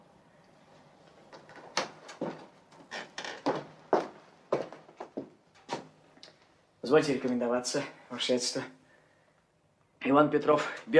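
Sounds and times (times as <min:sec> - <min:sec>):
door opening as a man comes in from a garden: 0:01.3 - 0:03.8
speech: 0:06.9 - 0:08.8, 0:10.0 - 0:10.9.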